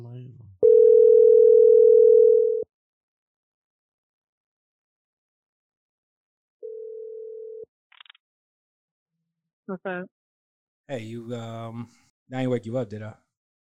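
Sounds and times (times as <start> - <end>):
outgoing phone call ringing tone: 0.6 - 2.7, 6.6 - 7.7
speech: 9.7 - 10.2, 10.9 - 13.2.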